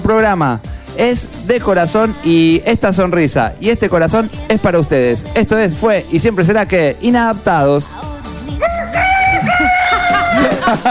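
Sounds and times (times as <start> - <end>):
speech: 0.1 - 8.6, 10.7 - 10.8
chuckling: 8.6 - 10.8
rooster crowing: 8.6 - 10.8.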